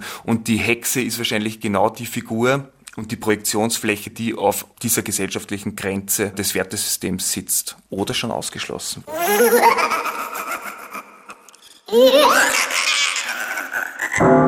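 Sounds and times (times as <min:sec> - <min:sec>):
speech: 0:00.2 - 0:10.1, 0:11.9 - 0:12.7
people laughing and giggling: 0:09.1 - 0:14.3.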